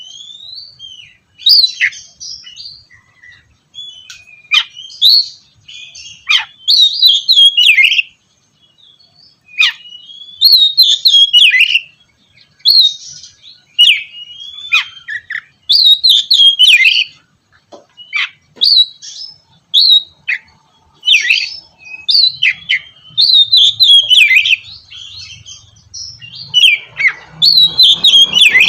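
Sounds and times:
Oriental magpie-robin singing whistled notes, slurs and sharp chips: 0:00.0 - 0:28.6.

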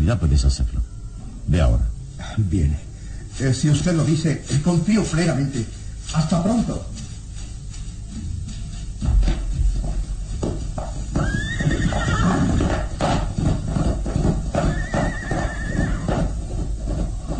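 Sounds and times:
speech: 0:00.1 - 0:00.9, 0:01.5 - 0:07.0
horse hooves galloping away into the mist: 0:01.4 - 0:17.3
peasant's horse whinnying loud and shrill: 0:11.1 - 0:13.3, 0:14.3 - 0:16.4.

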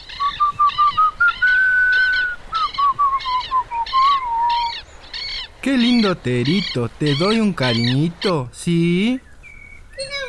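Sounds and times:
whistled tune: 0:00.2 - 0:04.6
speech: 0:05.7 - 0:09.3.

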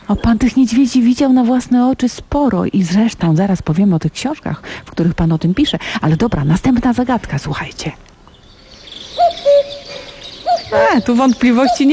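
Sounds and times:
faint steady hiss: 0:00.0 - 0:11.9
speech: 0:00.1 - 0:08.1, 0:10.7 - 0:11.9
cuckoo calling: 0:08.3 - 0:11.9.

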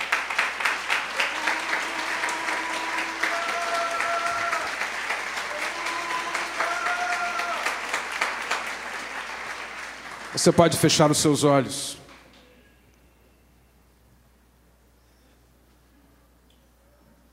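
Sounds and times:
congregation applauding in a church service: 0:00.0 - 0:12.4
speech: 0:10.4 - 0:12.0.

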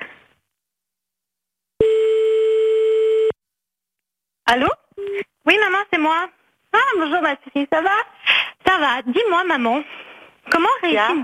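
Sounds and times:
telephone ring tone on a call: 0:01.8 - 0:03.3
speech: 0:04.5 - 0:11.2.

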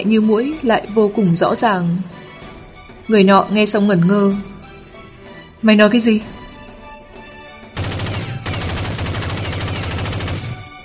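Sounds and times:
speech: 0:00.0 - 0:02.2, 0:03.1 - 0:04.5, 0:05.6 - 0:06.4
rapid crackling automatic gunfire burst: 0:07.8 - 0:10.7.

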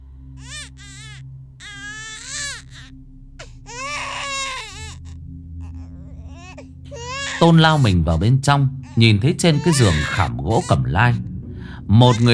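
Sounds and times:
newborn baby crying shrilly: 0:00.4 - 0:02.9, 0:03.7 - 0:07.8, 0:08.8 - 0:10.8
speech: 0:07.4 - 0:11.3, 0:11.9 - 0:12.3.

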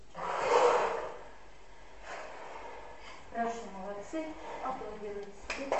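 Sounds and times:
forceful exhale during a breathing exercise: 0:00.1 - 0:03.3.

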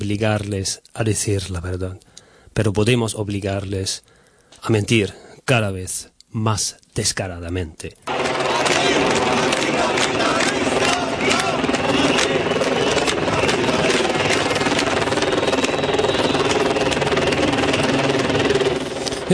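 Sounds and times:
speech: 0:00.0 - 0:08.2
helicopters flying over Barcelona city centre: 0:08.0 - 0:19.3.

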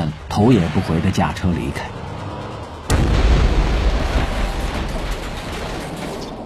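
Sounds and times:
crackling debris: 0:00.0 - 0:06.4
speech: 0:00.1 - 0:02.0
heavy rumbling roar after an explosion: 0:00.2 - 0:05.8
explosion from planted explosives destroying a bar: 0:02.9 - 0:06.4.

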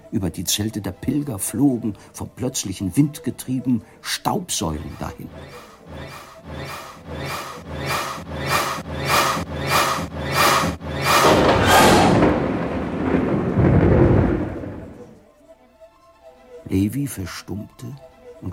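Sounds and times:
speech: 0:00.1 - 0:07.4, 0:16.7 - 0:18.5
steady rhythmic pulsing: 0:04.8 - 0:12.7
thunder rolling in a thunderstorm over Jerusalem: 0:08.2 - 0:15.2.

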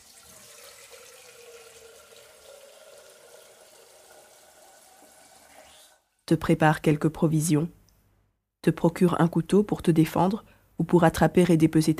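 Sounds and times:
water filling a flask: 0:00.0 - 0:06.1
speech: 0:06.3 - 0:07.8, 0:08.6 - 0:11.9.

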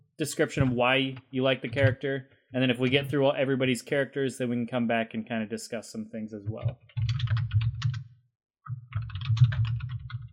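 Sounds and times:
speech: 0:00.2 - 0:07.0
typing on a computer keyboard: 0:06.6 - 0:08.0, 0:08.7 - 0:10.3.

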